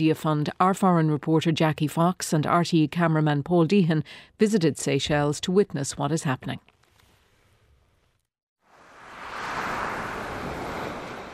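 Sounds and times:
speech: 0.0s - 6.7s
ocean waves around a small island in the Indian Ocean: 8.7s - 11.3s.

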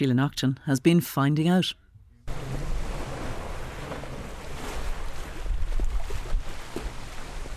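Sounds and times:
speech: 0.0s - 2.5s
blustery seaside wind buffeting the microphone: 2.3s - 7.5s
waves breaking against a seaside pier: 2.3s - 7.5s.

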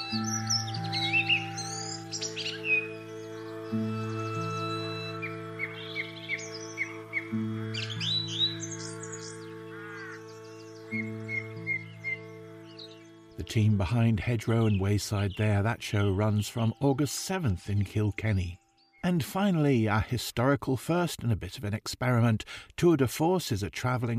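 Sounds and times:
busy morning birdsong of chirps, trills and whistles outdoors: 0.0s - 21.2s
speech: 0.1s - 0.6s, 13.5s - 24.1s.

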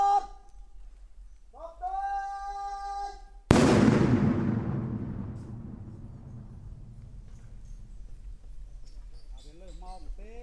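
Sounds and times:
TM-46 anti-tank mine detonated in a controlled demolition during mine clearance: 3.5s - 7.4s.

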